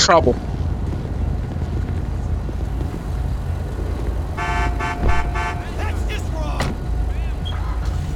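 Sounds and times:
car engine rumble: 0:00.0 - 0:08.1
car horn honking: 0:04.4 - 0:06.8.

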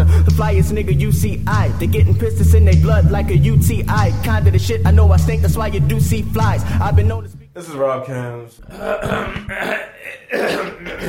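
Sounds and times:
speech: 0:00.4 - 0:11.0
throat clearing: 0:08.6 - 0:11.0.

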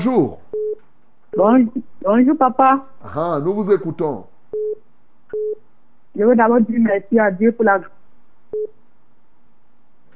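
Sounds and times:
speech: 0:00.0 - 0:00.4, 0:01.4 - 0:04.3, 0:06.2 - 0:08.8
hiss: 0:00.0 - 0:10.1
telephone busy tone after dropped call: 0:04.6 - 0:05.6.

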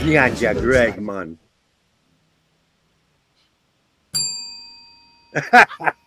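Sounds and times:
speech: 0:00.0 - 0:01.4, 0:05.3 - 0:06.0
single bell tolled for a departed person: 0:04.2 - 0:06.0
person talking or laughing: 0:05.4 - 0:06.0.

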